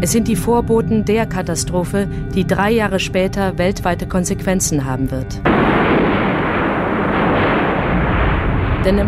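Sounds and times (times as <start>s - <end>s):
speech: 0.0s - 5.9s, 8.8s - 9.0s
volcanic eruption explosions of the Tambora volcano: 5.4s - 9.0s.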